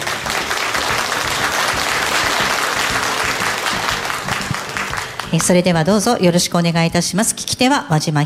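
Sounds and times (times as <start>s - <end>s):
room full of people applauding: 0.0s - 5.8s
speech: 5.3s - 8.2s.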